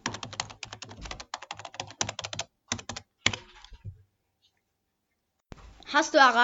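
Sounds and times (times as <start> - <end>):
typing on a computer keyboard: 0.0 - 3.7
speech: 5.9 - 6.4.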